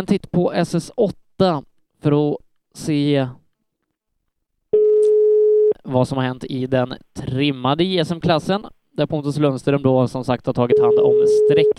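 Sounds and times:
speech: 0:00.0 - 0:03.4, 0:05.8 - 0:11.7
steady low-pitched electronic telephone tone while calling back: 0:04.7 - 0:05.9, 0:10.7 - 0:11.7.

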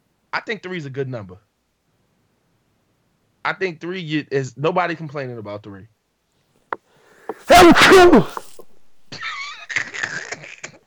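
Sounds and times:
speech: 0:00.4 - 0:01.5, 0:03.4 - 0:05.9, 0:07.4 - 0:08.4
person sneezing into the elbow: 0:07.3 - 0:09.6.

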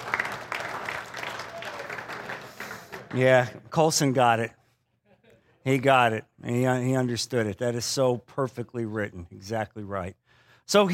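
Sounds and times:
many hands clapping: 0:00.0 - 0:03.5
speech: 0:03.1 - 0:04.6, 0:05.6 - 0:10.9.

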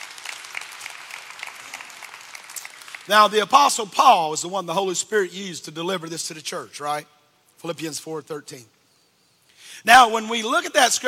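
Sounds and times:
crowd applauding: 0:00.0 - 0:03.3
speech: 0:03.1 - 0:08.8, 0:09.8 - 0:11.0.

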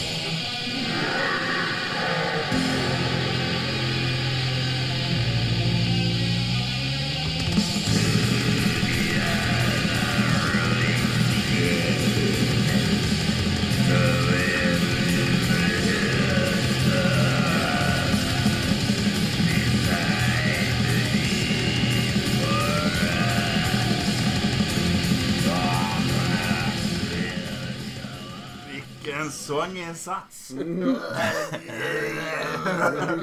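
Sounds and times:
harsh screamed black metal vocal: 0:00.0 - 0:05.0, 0:07.8 - 0:28.9, 0:31.0 - 0:33.2
dense distorted black metal guitars: 0:00.0 - 0:29.9
rapid relentless black metal drumming: 0:07.5 - 0:28.7
speech: 0:29.5 - 0:33.2
laughter: 0:30.5 - 0:33.2.

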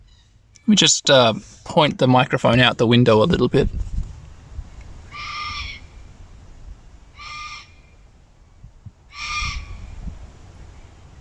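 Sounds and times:
speech: 0:00.7 - 0:03.9
red-tailed black cockatoo giving harsh grating calls: 0:05.0 - 0:06.0, 0:07.1 - 0:08.0, 0:09.1 - 0:10.0.

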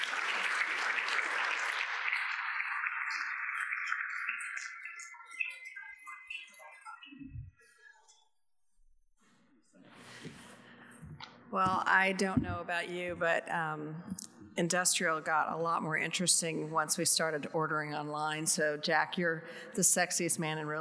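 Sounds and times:
crowd applauding for panelists: 0:00.0 - 0:04.7
speech: 0:11.6 - 0:20.7.

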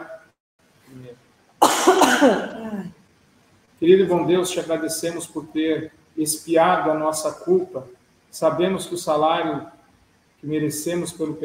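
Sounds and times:
loud harsh coughing: 0:01.6 - 0:02.8
person clearing throat: 0:01.6 - 0:02.9
speech: 0:02.2 - 0:03.0, 0:03.8 - 0:09.8, 0:10.4 - 0:11.4.

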